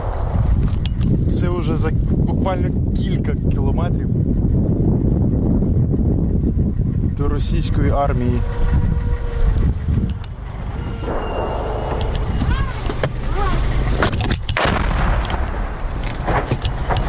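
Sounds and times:
sharp impacts: 0:00.0 - 0:02.2, 0:09.8 - 0:17.0
FPV drone strike blast: 0:00.0 - 0:02.3, 0:08.5 - 0:13.9, 0:14.6 - 0:16.0
constant loud rumble: 0:00.0 - 0:17.0
speech: 0:01.7 - 0:04.8, 0:07.2 - 0:08.9.

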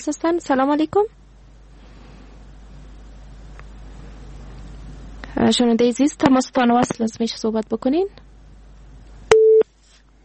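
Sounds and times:
speech: 0:00.0 - 0:01.2, 0:05.4 - 0:08.2
telephone busy tone after a call is cut off: 0:09.3 - 0:09.6.

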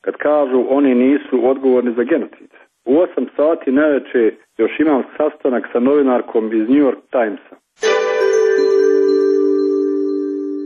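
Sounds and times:
speech: 0:00.2 - 0:08.0
telephone ringing with a steady electronic tone: 0:07.8 - 0:10.6.

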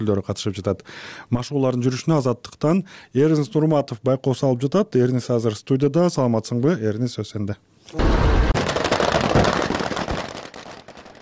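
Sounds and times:
speech: 0:00.0 - 0:08.5
rapid gunfire during an anti-terror training exercise: 0:08.0 - 0:10.2.

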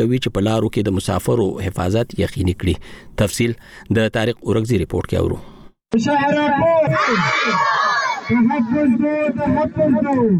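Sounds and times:
speech: 0:00.0 - 0:10.3
higher shrill chorus of cries: 0:06.6 - 0:09.0
crowd of protesters chanting slogans: 0:06.9 - 0:09.0.

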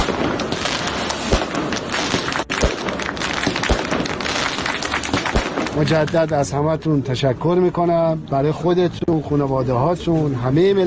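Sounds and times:
firecracker bangs: 0:00.0 - 0:06.0
outdoor crowd noise: 0:00.0 - 0:10.8
speech: 0:05.8 - 0:10.8.

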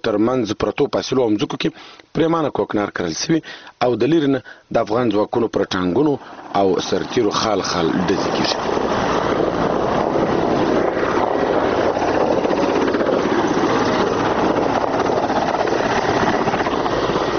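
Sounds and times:
speech: 0:00.0 - 0:09.1
military attack helicopter circling overhead: 0:06.2 - 0:17.3.

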